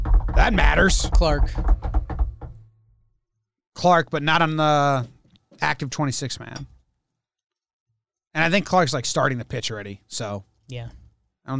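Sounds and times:
knocking on a wooden surface: 0.0 - 2.7
speech: 0.5 - 1.7, 3.8 - 6.8, 8.4 - 11.5.

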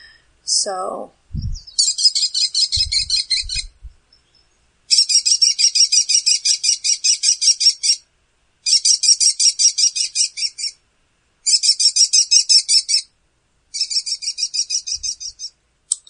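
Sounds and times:
speech: 0.5 - 1.4
American kestrel alarm call: 1.6 - 3.7, 4.9 - 10.8, 11.4 - 13.1, 13.7 - 15.6.

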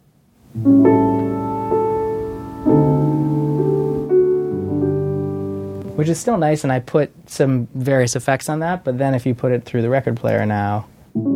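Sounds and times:
speech: 0.6 - 0.8, 6.0 - 11.3
sampled piano chords from a software plug-in: 0.6 - 6.6, 11.2 - 11.3.

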